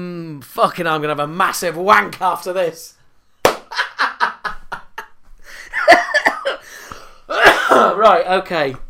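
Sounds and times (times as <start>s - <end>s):
speech: 0.0s - 3.0s, 7.8s - 8.8s
laughter: 3.7s - 6.6s
strained breathing: 5.4s - 5.8s, 6.6s - 7.3s
rapid coughs: 6.1s - 8.0s.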